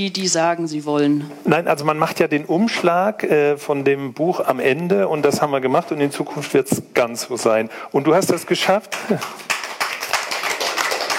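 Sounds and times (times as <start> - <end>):
speech: 0.0 - 9.6
restrained audience clapping: 8.3 - 11.1.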